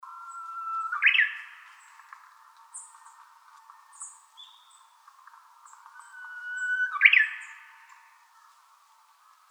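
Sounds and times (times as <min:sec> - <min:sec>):
Japanese bush warbler song: 0:00.0 - 0:01.9, 0:04.0 - 0:04.8, 0:06.0 - 0:08.0.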